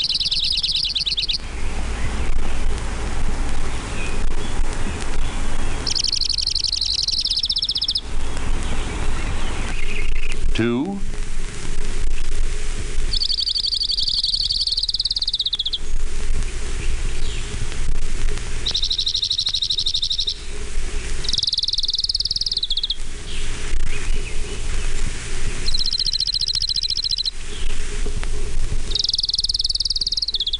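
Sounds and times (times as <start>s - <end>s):
chorus of frogs: 0.0s - 2.2s, 5.5s - 8.3s, 13.0s - 17.6s, 18.5s - 30.5s
orange-crowned warbler singing high fast trills: 0.0s - 2.7s, 3.6s - 10.5s, 13.0s - 17.7s, 18.3s - 27.8s, 28.4s - 30.5s
chorus of insects: 0.0s - 10.6s, 11.2s - 30.5s.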